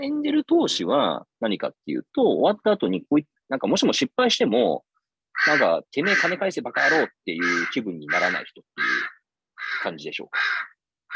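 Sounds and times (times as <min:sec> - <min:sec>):
speech: 0:00.0 - 0:09.1, 0:09.8 - 0:10.8
crows cawing outdoors: 0:05.3 - 0:11.1.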